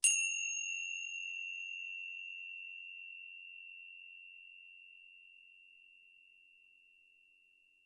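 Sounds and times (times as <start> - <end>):
Tibetan cymbal high sound: 0.0 - 4.6.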